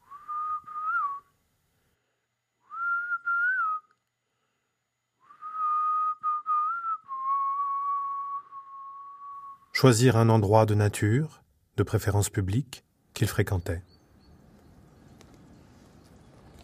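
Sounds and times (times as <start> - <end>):
person whistling a melodic tune: 0.0 - 1.3, 2.6 - 4.0, 5.2 - 9.7
speech: 9.8 - 13.9.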